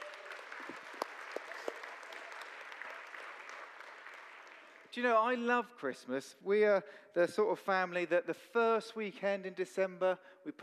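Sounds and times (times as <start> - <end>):
family audience applause: 0.0 - 4.9
speech: 5.0 - 10.6.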